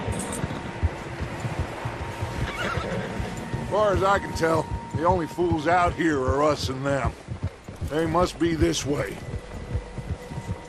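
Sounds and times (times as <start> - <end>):
steady outdoor rumble: 0.0 - 10.6
horses neighing and whinnying: 0.2 - 3.7
speech: 3.8 - 7.2, 7.9 - 9.3.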